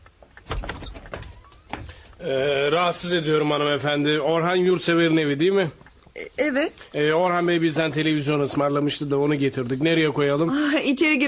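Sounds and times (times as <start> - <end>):
door thump: 0.4 - 2.3
speech: 2.2 - 5.8, 6.4 - 11.2.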